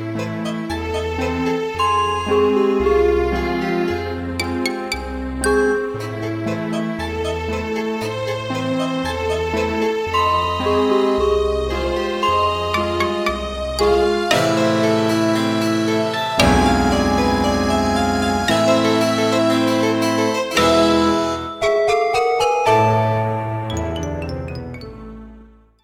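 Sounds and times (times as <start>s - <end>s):
organ playing: 0.1s - 7.9s, 8.5s - 25.4s.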